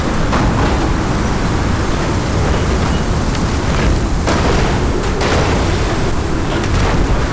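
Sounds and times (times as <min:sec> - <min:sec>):
tornado: 0:00.0 - 0:07.3.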